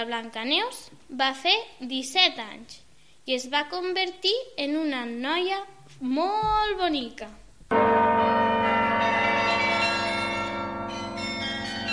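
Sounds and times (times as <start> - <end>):
speech: 0.0 - 7.8
church bells ringing together in a village: 7.7 - 11.9.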